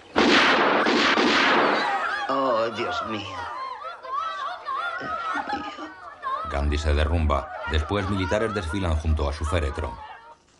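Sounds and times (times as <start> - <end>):
pistol gunshot: 0.2 - 2.0
laughter: 1.8 - 10.4
speech: 3.0 - 3.5, 6.6 - 10.1.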